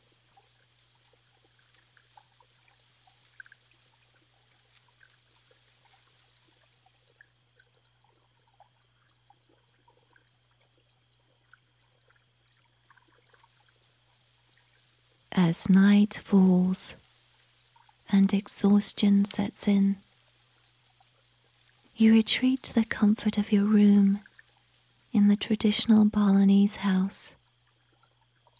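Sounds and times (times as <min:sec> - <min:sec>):
distant crickets chirping: 0:00.0 - 0:28.5
trickling canal water: 0:00.0 - 0:28.5
low constant drone: 0:15.2 - 0:27.4
speech: 0:15.4 - 0:17.0, 0:18.1 - 0:20.0, 0:22.0 - 0:24.3, 0:25.1 - 0:27.4.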